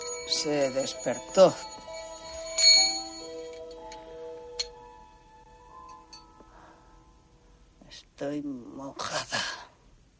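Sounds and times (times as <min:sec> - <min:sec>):
bells ringing: 0:00.0 - 0:07.2
speech: 0:00.3 - 0:01.8, 0:08.2 - 0:09.5.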